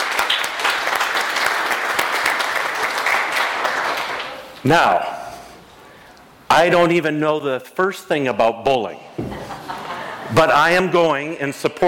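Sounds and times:
church audience applauding: 0:00.0 - 0:04.5
speech: 0:04.6 - 0:05.1, 0:06.5 - 0:09.1, 0:10.3 - 0:11.8
laughter: 0:09.2 - 0:10.5.

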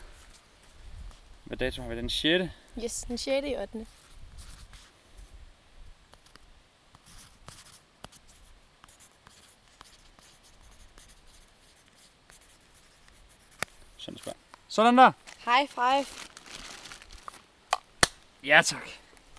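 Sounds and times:
speech: 0:01.5 - 0:04.0, 0:14.8 - 0:16.2, 0:18.4 - 0:19.0
pen scratching on paper writing by hand in a logbook: 0:07.0 - 0:13.7
small paper rustles: 0:15.2 - 0:18.2.

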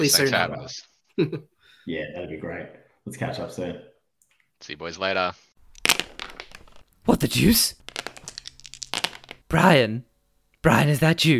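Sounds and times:
speech: 0:00.0 - 0:03.9, 0:04.6 - 0:06.0, 0:07.1 - 0:07.8, 0:09.5 - 0:11.3
dice rattling and clattering across a hard surface: 0:05.8 - 0:09.5.

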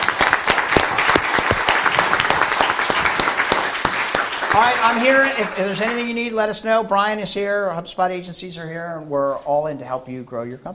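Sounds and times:
crowd applauding at a partners event: 0:00.0 - 0:06.3
speech: 0:04.6 - 0:10.7.

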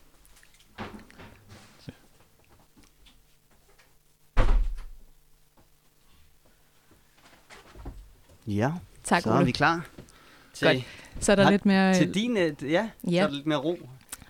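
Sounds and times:
door swinging shut with a solid thud: 0:04.4 - 0:05.0
speech: 0:08.5 - 0:09.9, 0:10.6 - 0:13.9.

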